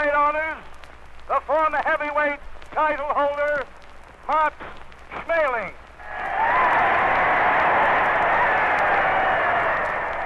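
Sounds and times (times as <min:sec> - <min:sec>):
speech: 0:01.3 - 0:03.7, 0:04.3 - 0:05.8
crowd cheering at a heavyweight championship boxing match in a stadium: 0:06.0 - 0:10.2.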